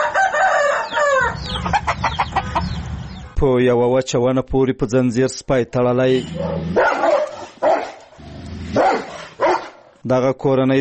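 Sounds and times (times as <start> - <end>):
rooster crowing in a run-down courtyard: 0.0 - 2.3
hens clucking in a run-down courtyard: 0.8 - 3.3
low rumble: 1.3 - 3.4
speech: 3.4 - 7.0, 10.0 - 10.8.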